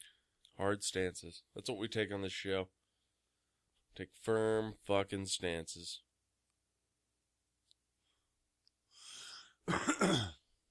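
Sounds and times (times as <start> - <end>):
speech: 0.6 - 2.8, 4.0 - 6.1, 9.7 - 10.4
person clearing throat: 9.7 - 10.5.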